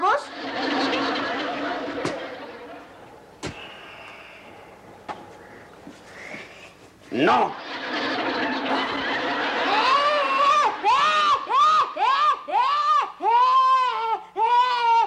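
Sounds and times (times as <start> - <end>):
noisy muddled sound: 0.0 - 12.8
laughter: 0.1 - 3.2, 7.2 - 14.6
speech: 7.2 - 7.7
child's whiny high-pitched squealing shrieks: 9.7 - 15.0.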